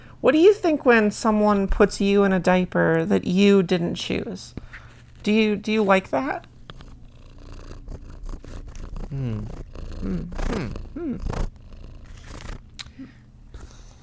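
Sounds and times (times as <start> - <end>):
speech: 0.2 - 6.5, 9.1 - 11.5
cat purring: 6.5 - 12.8.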